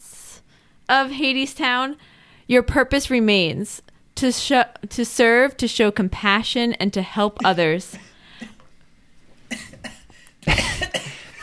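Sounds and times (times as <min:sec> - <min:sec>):
speech: 0:00.9 - 0:08.5
person coughing: 0:07.4 - 0:08.7, 0:09.5 - 0:11.4.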